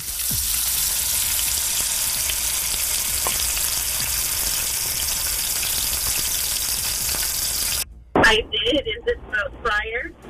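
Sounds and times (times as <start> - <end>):
deep fryer frying food with hissing crackling sizzle: 0.0 - 7.8
person talking: 8.2 - 10.2.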